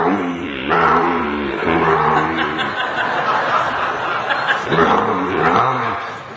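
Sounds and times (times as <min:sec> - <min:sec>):
voice imitating roaring big truck engines: 0:00.0 - 0:03.0, 0:04.6 - 0:06.2
laughter: 0:00.0 - 0:06.3.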